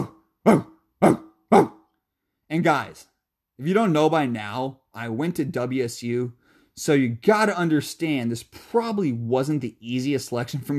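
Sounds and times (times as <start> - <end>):
dog barking: 0.0 - 1.8
speech: 0.4 - 1.2, 2.6 - 10.7.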